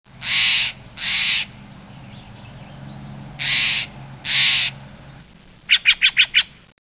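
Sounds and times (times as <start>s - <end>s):
Steller's jay calling: 0.2s - 2.7s, 3.4s - 4.8s, 5.7s - 6.6s.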